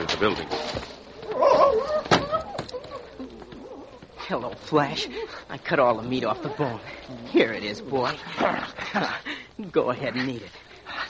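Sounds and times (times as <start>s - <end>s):
speech: 0.2s - 2.1s, 4.3s - 10.6s
dog howling inside a barn: 1.2s - 4.2s, 6.1s - 8.1s.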